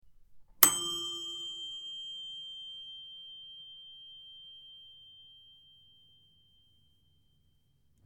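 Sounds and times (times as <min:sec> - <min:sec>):
oven timer ding: 0:00.6 - 0:05.9.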